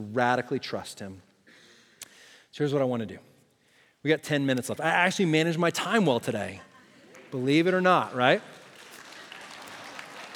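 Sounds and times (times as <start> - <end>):
speech: 0.0 - 1.3, 2.6 - 3.3, 4.0 - 6.7, 7.3 - 8.6
audience applause: 7.1 - 10.3.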